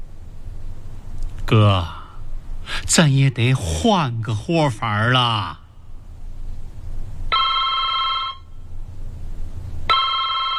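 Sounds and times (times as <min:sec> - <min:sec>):
low hum: 0:00.0 - 0:10.5
speech: 0:01.5 - 0:02.0, 0:02.7 - 0:05.6
telephone ringing in electronic bursts: 0:07.3 - 0:08.5, 0:09.9 - 0:10.5.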